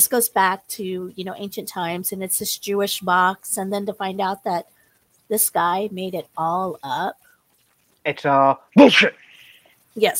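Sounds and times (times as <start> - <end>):
speech: 0.0 - 7.2, 8.0 - 9.2, 10.0 - 10.1
sharp sneeze with a breathy hissing tail: 8.8 - 9.2.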